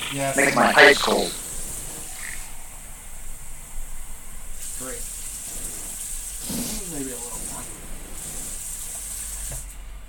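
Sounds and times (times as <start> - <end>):
brief voices: 0.0 - 1.5
speech: 0.1 - 1.4
hot water running from a tap: 4.6 - 9.7.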